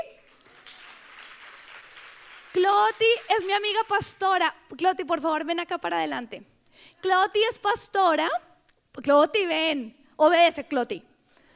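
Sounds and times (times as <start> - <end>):
audience applause of many hands clapping: 0.3 - 2.6
speech: 2.7 - 11.1.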